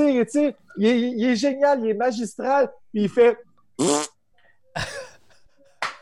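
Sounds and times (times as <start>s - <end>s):
speech: 0.2s - 4.1s
person blowing raspberries imitating a fart: 3.8s - 4.2s.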